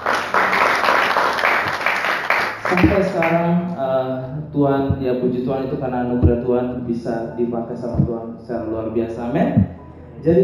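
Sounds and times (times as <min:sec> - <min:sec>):
audience applause: 0:00.0 - 0:03.4
speech: 0:02.7 - 0:10.4.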